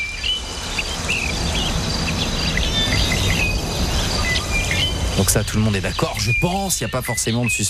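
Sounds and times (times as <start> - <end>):
insects and crickets chirring: 0.0 - 7.6
constant low rumble: 0.3 - 6.4
speech: 5.2 - 7.6.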